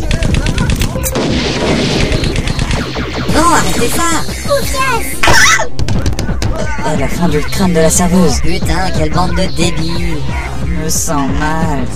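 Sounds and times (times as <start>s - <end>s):
gunfire: 0.0s - 6.5s
speech: 3.6s - 5.8s, 6.6s - 11.9s.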